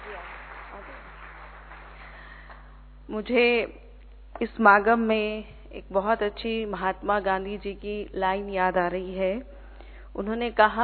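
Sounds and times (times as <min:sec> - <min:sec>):
audience applause in a large room: 0:00.0 - 0:02.7
speech: 0:03.1 - 0:03.8, 0:04.4 - 0:09.6, 0:10.2 - 0:10.8.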